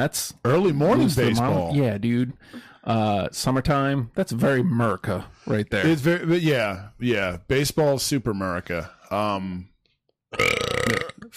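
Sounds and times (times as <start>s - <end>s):
speech: 0.0s - 9.7s, 10.3s - 11.3s
low drawn-out burp: 10.3s - 11.3s.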